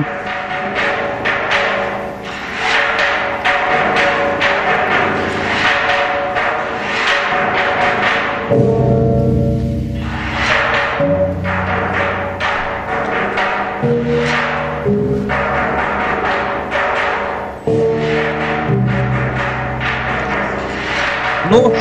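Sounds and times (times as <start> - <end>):
bronze frog drum struck in a steady rhythm: 0.0 - 21.7
speech: 21.5 - 21.7.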